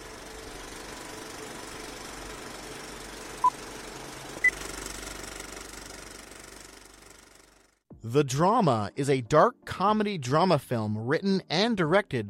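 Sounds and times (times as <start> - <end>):
film projector warming up with reels spinning: 0.0 - 7.8
speech: 8.0 - 12.2.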